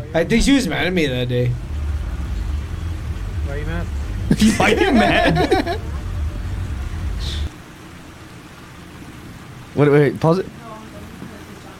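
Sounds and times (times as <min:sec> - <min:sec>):
speech: 0:00.1 - 0:01.7, 0:03.5 - 0:06.0, 0:09.8 - 0:10.6
steady hissing rain: 0:00.3 - 0:11.7
laughter: 0:04.3 - 0:06.1.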